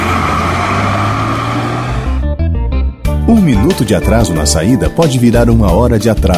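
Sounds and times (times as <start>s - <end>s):
bus engine rumbling as the bus drives away: 0.0s - 2.7s
speech: 3.3s - 6.3s.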